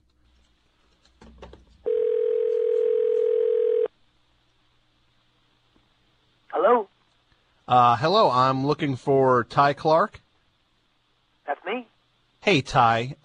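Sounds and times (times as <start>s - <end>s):
telephone dial tone: 1.9s - 3.9s
speech: 7.7s - 10.2s, 12.4s - 13.2s.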